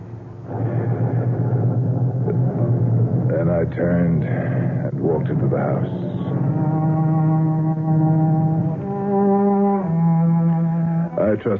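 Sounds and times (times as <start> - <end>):
car engine rumbling low: 0.0 - 11.5
speech: 3.4 - 7.2, 11.3 - 11.5.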